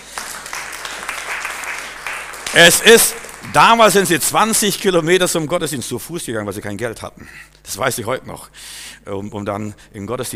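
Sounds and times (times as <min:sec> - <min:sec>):
church congregation applauding during a service: 0:00.0 - 0:05.0
speech: 0:02.5 - 0:10.3.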